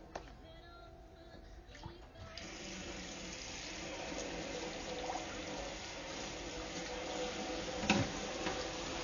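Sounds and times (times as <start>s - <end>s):
water running into a sink: 2.3s - 9.0s
dirty soaked pan being scrubbed: 3.3s - 9.0s.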